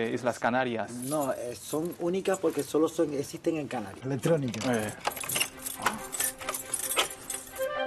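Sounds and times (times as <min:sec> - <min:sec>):
speech: 0:00.0 - 0:06.0
metal keys jangling while unlocking an old door: 0:00.9 - 0:02.8, 0:04.5 - 0:07.7.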